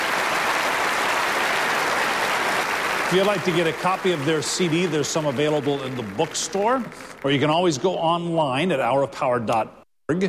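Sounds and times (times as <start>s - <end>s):
audience applauding child performers: 0.0s - 8.2s
speech: 3.1s - 10.2s.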